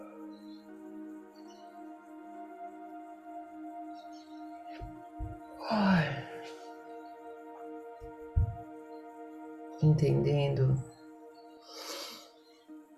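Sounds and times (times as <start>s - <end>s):
steady low humming drone: 0.0s - 11.6s
soft thumps: 4.8s - 5.4s, 8.4s - 8.6s
speech: 10.0s - 10.9s
slow deep breath in and out: 11.6s - 12.4s.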